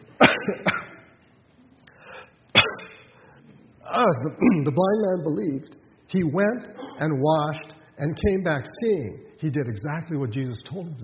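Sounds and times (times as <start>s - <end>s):
person coughing sharply: 0.2s - 1.1s, 2.5s - 3.2s, 4.4s - 4.8s, 6.8s - 7.1s
speech: 0.5s - 0.8s, 3.9s - 11.0s
faint breathy noise: 1.8s - 2.4s, 3.0s - 3.7s.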